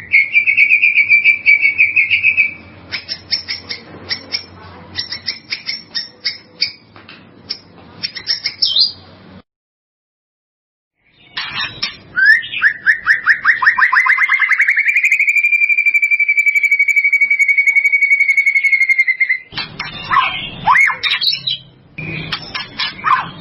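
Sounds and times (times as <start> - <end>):
white-rumped shama song: 0.0 - 6.9, 7.5 - 9.1, 11.0 - 23.3.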